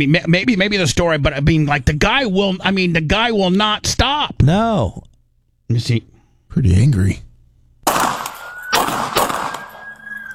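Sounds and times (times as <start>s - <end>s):
speech: 0.0s - 5.1s, 5.7s - 7.3s
pistol gunshots at a range: 7.8s - 10.2s.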